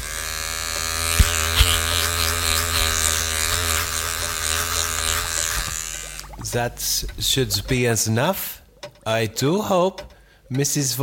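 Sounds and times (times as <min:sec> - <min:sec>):
electric razor shaving off beard hair: 0:00.0 - 0:06.4
speech: 0:06.5 - 0:11.0.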